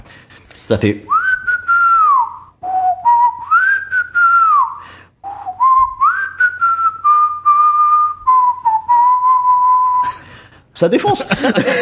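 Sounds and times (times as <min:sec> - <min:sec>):
speech: 0:00.7 - 0:01.1, 0:10.8 - 0:11.8
person whistling a slow sweeping melody: 0:01.1 - 0:10.3
short breaths: 0:04.7 - 0:05.3, 0:10.0 - 0:10.7
laughter: 0:11.0 - 0:11.8.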